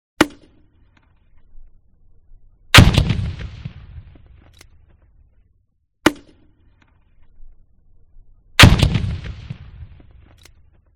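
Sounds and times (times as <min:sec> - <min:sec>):
grenade launcher firing: 0:02.8 - 0:04.2, 0:08.6 - 0:10.4.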